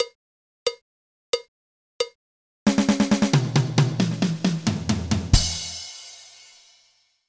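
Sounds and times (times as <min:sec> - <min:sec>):
triplet drum fill with ghost notes: 0:02.7 - 0:06.8.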